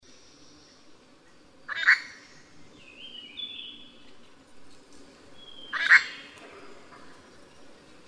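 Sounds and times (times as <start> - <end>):
steady low background hiss: 0.1 - 8.0
grey treepie harsh grating calls at Yushan: 1.6 - 2.6, 5.4 - 7.2.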